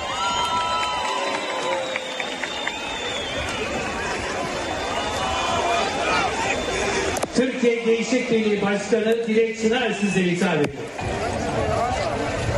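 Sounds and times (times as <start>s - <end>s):
applause-like noise: 0.0s - 5.5s
large crowd cheering: 0.0s - 12.5s
whistles from a crowd: 0.2s - 7.3s
speech: 7.6s - 11.2s.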